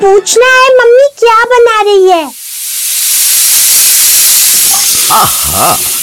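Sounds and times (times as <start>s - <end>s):
speech: 0.2s - 2.4s, 5.1s - 6.0s
pressure cooker venting steam in a continuous hiss: 2.2s - 6.0s.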